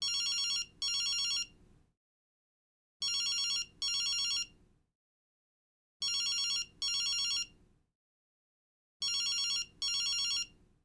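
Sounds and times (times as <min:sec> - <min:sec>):
telephone cellphone ringing fast: 0:00.0 - 0:01.5, 0:03.0 - 0:04.5, 0:06.0 - 0:07.5, 0:09.0 - 0:10.5.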